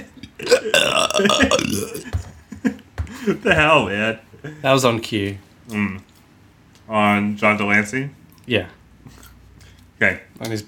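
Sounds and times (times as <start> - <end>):
low grunt-like gulp: 0.2 - 2.1
loud drawn-out gurgling burp: 0.3 - 2.2
speech: 0.4 - 2.2, 3.2 - 6.1, 6.9 - 9.2, 10.0 - 10.6.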